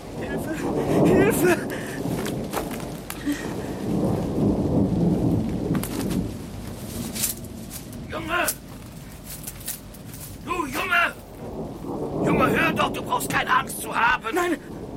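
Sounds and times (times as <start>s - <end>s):
rolling thunder in a thunderstorm: 0.0s - 9.1s, 10.4s - 14.9s
steady rain in a thunderstorm: 0.0s - 14.9s
speech: 1.4s - 1.9s.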